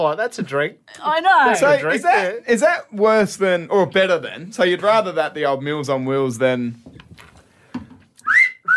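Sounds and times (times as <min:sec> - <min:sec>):
speech: 0:00.0 - 0:07.0
wolf whistle: 0:08.2 - 0:08.7.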